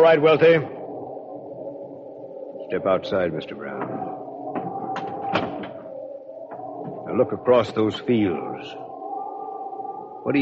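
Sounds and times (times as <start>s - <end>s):
speech: 0.0s - 0.8s, 2.7s - 4.2s, 7.1s - 8.8s, 10.2s - 10.4s
steady low hum: 0.0s - 10.4s
door being shut in a house: 3.8s - 5.8s.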